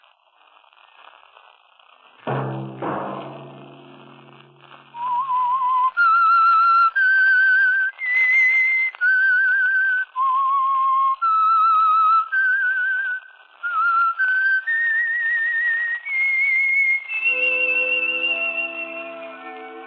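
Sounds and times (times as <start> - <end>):
solo whistler whistling a tremulous theme tune: 4.9 - 19.8.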